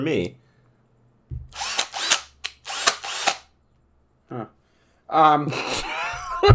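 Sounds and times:
speech: 0.0s - 0.4s, 4.3s - 5.8s
power drill whirring: 1.5s - 3.5s.

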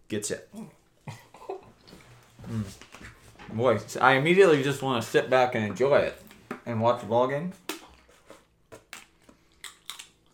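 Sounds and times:
speech: 0.1s - 1.2s, 2.5s - 7.6s
seeds being cracked and chewed: 8.8s - 10.3s.

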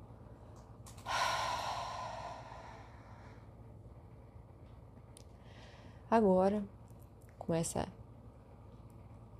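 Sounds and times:
deep breathy exhale: 1.0s - 3.5s
speech: 6.1s - 6.8s, 7.5s - 8.0s.

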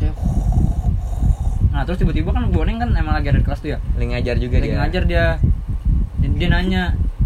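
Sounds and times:
voice imitating snoring: 0.2s - 1.9s
speech: 1.9s - 5.5s, 6.4s - 7.1s.

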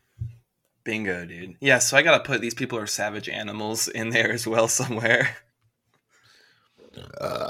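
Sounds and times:
speech: 0.8s - 5.5s, 6.9s - 7.4s
loud drawn-out gurgling burp: 6.9s - 7.4s.

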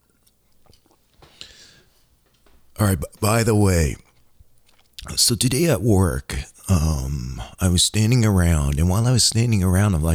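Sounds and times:
soft wet mouth clicks: 0.0s - 1.6s, 4.0s - 5.1s
speech: 2.8s - 4.0s, 5.2s - 10.1s.

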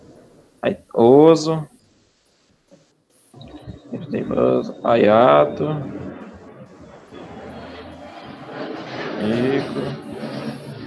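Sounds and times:
speech: 0.6s - 1.7s, 4.1s - 6.0s, 9.2s - 9.9s
faint murmuring voices: 3.4s - 10.4s
airplane passing overhead: 3.8s - 10.8s.

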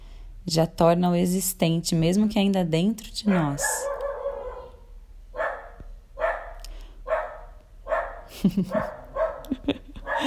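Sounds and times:
speech: 0.4s - 3.9s, 8.4s - 10.2s
dog barking: 3.2s - 10.2s
laughter: 8.3s - 10.2s.

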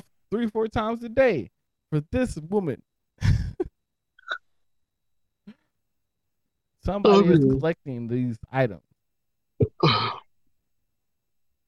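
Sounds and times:
speech: 0.3s - 2.9s, 6.8s - 8.9s
person yawning: 9.7s - 10.2s.

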